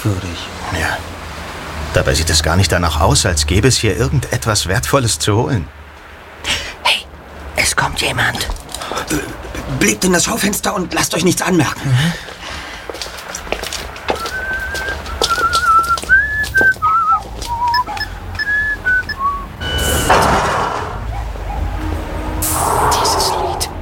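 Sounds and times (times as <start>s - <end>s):
speech: 0.0s - 1.2s, 1.9s - 5.8s, 7.9s - 12.4s
street noise whooshing past: 0.4s - 4.2s, 12.4s - 23.8s
footsteps on pavement: 12.1s - 19.4s
man whistling a song while walking along a street: 14.2s - 19.8s.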